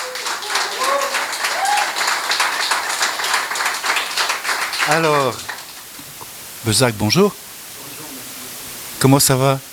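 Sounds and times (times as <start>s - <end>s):
whoops: 0.0s - 2.3s
crowd applauding: 0.0s - 6.0s
speech: 4.8s - 5.5s, 6.6s - 7.4s, 9.0s - 9.7s.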